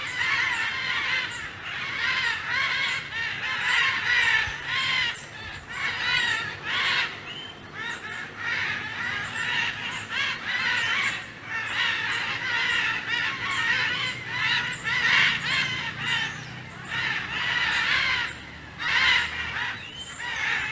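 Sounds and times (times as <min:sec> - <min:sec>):
military macaws squawking and screeching in chorus: 0:00.0 - 0:20.7.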